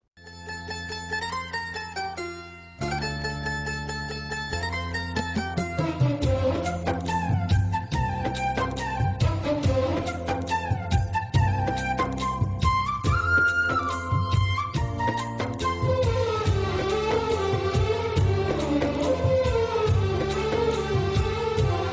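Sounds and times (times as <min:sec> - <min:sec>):
violin: 0:00.2 - 0:21.9
flute: 0:05.8 - 0:21.9.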